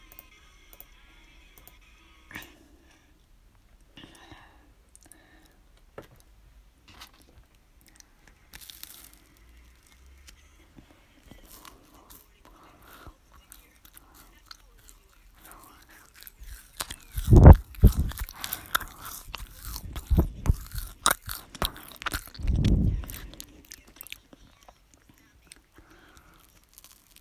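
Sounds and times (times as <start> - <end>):
chewing and crunching: 6.9 - 27.2
slurping: 11.3 - 27.2.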